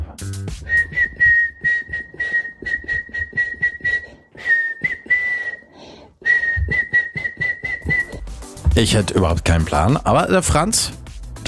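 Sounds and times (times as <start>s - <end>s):
woman whistling a catchy pop melody: 0.6s - 8.2s
speech: 8.8s - 11.4s.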